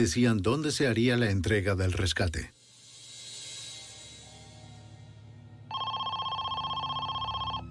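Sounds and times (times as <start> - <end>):
speech: 0.0 - 2.6
telephone ringing: 5.7 - 7.7.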